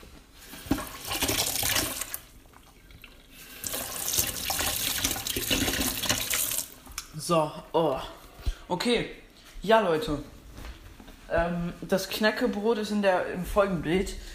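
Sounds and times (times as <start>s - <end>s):
water running from a tap filling a glass: 0.7s - 6.8s
speech: 7.3s - 10.4s, 11.3s - 14.3s.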